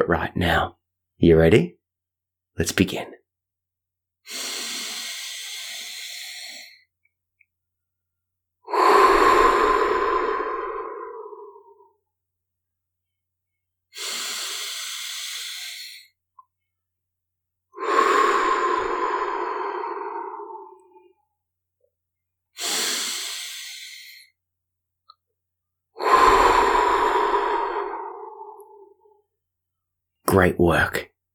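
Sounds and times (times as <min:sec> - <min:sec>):
speech: 0:00.0 - 0:01.8, 0:02.6 - 0:03.2, 0:04.2 - 0:04.5, 0:30.4 - 0:31.1
slow calm breathing in and out as a calm-breathing exercise: 0:04.2 - 0:06.9, 0:08.7 - 0:12.0, 0:13.9 - 0:16.2, 0:17.8 - 0:21.3, 0:22.6 - 0:24.4, 0:26.0 - 0:29.2.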